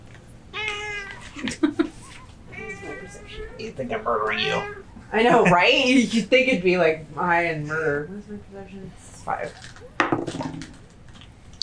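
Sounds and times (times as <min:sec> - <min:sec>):
cat meowing: 0:00.5 - 0:01.4, 0:02.0 - 0:05.0
laughter: 0:01.2 - 0:02.2
speech: 0:01.4 - 0:01.8, 0:03.4 - 0:10.7.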